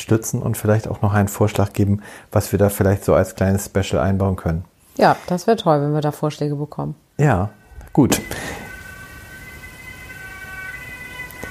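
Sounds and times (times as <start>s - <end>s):
speech: 0.0s - 8.6s
police siren wailing: 7.6s - 11.4s
low rumble of traffic: 7.7s - 11.4s.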